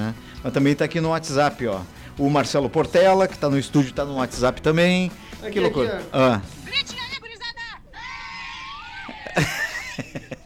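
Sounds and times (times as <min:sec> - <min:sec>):
speech: 0:00.0 - 0:07.0, 0:09.3 - 0:09.6
laughter: 0:05.4 - 0:10.4
children screaming in a van: 0:07.1 - 0:09.9.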